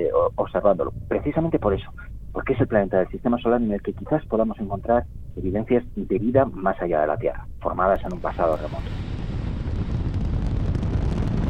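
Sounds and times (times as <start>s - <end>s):
wind of a rising dust storm on Mars: 0.0s - 11.4s
speech: 0.2s - 9.1s.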